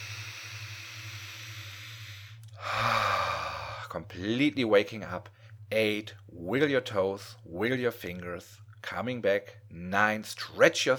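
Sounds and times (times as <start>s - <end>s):
deep breath in and out during a guided count to wake up: 0.0s - 3.9s
speech: 3.9s - 10.9s.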